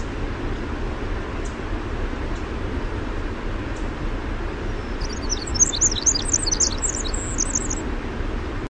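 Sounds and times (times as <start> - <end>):
constant low rumbling noise: 0.0 - 8.6
winter wren song with rapid very high bubbling trills: 3.7 - 7.8.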